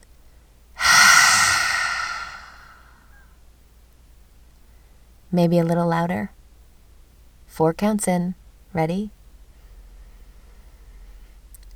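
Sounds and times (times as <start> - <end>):
deep breath in: 0.8 - 2.9
speech: 5.3 - 6.4, 7.5 - 9.2.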